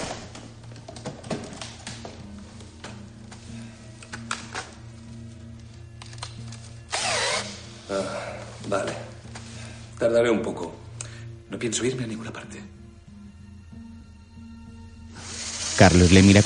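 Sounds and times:
electric drill with very fine bit drilling a safe: 6.9s - 7.8s, 15.1s - 16.4s
speech: 7.9s - 9.1s, 10.0s - 10.8s, 11.5s - 12.8s, 15.8s - 16.4s
high-pitched grinding burst of drill on a safe: 15.2s - 16.4s.

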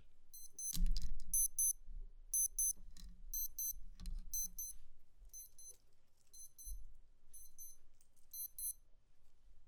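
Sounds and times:
cardio fitness watch alarm beeping: 0.4s - 0.7s, 1.4s - 1.8s, 2.4s - 2.8s, 3.4s - 3.8s, 4.4s - 4.8s, 5.4s - 5.7s, 6.4s - 6.8s, 7.4s - 7.8s, 8.4s - 8.8s.

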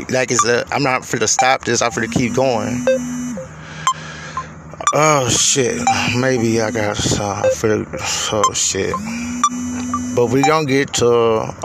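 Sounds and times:
speech: 0.0s - 3.2s, 4.9s - 11.6s
low steady hum: 0.0s - 11.6s
mobile phone ringing with electronic beeps: 1.4s - 3.5s, 5.8s - 7.6s, 8.4s - 10.8s.

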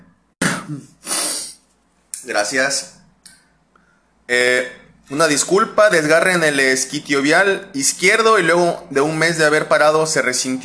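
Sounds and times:
person sneezing: 0.4s - 1.7s
speech: 0.7s - 1.1s, 2.2s - 3.0s, 4.3s - 10.6s.

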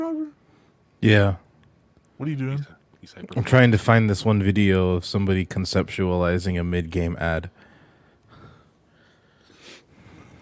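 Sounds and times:
speech: 1.0s - 1.4s, 2.2s - 7.6s
heavy breathing into a microphone: 7.6s - 10.4s.

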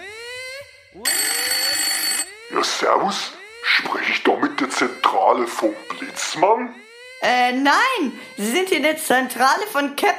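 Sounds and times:
telephone ringing with rising electronic tones: 1.0s - 8.6s
speech: 2.6s - 10.1s.

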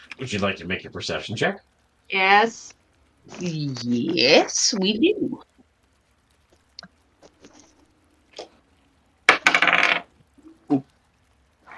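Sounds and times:
speech: 0.2s - 5.5s
dice tumbling across a hard table: 9.3s - 10.2s.

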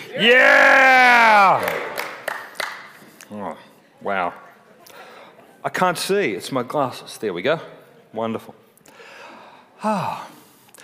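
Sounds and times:
church audience yelling together at a Sunday service: 0.0s - 1.6s
speech: 0.1s - 0.8s, 5.6s - 8.6s, 9.8s - 10.4s
murmur of voices in a church: 3.7s - 10.6s.

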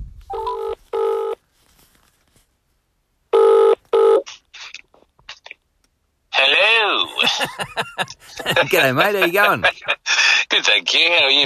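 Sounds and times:
telephone ringback tone over a call line: 0.3s - 1.4s, 3.4s - 4.2s
laughter: 7.1s - 10.4s
speech: 7.4s - 10.0s, 10.6s - 11.4s.

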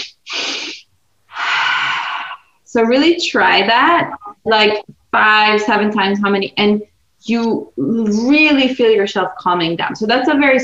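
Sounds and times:
quick sharp breaths drawn in through the nose: 0.0s - 2.6s
speech: 2.8s - 10.6s.

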